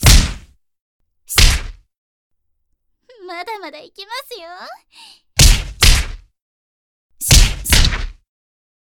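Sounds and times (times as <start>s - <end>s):
jab punches landing on a face: 0.0s - 0.6s, 1.3s - 1.8s, 5.4s - 6.3s, 7.2s - 8.2s
speech: 3.3s - 5.2s.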